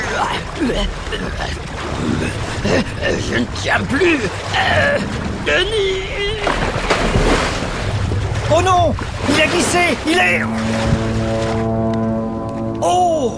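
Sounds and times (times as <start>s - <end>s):
waves crashing against a rocking iceberg: 0.0s - 13.3s
speech: 0.2s - 6.9s, 8.5s - 11.1s, 12.8s - 13.3s
steady droning tone: 3.0s - 13.3s.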